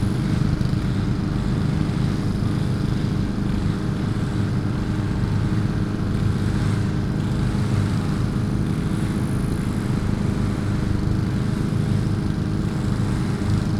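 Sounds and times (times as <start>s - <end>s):
several lawn mower engines droning: 0.0s - 13.7s.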